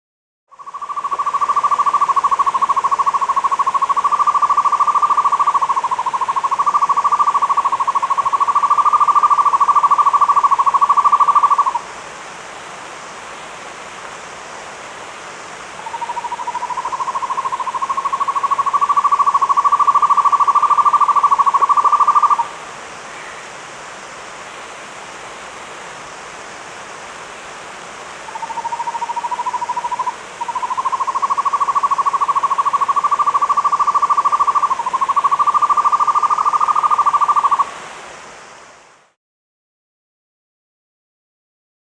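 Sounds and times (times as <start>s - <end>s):
Buff-fronted owl Aegolius harrisii calling in South America: 0.5s - 11.8s, 15.8s - 22.5s, 28.3s - 37.7s.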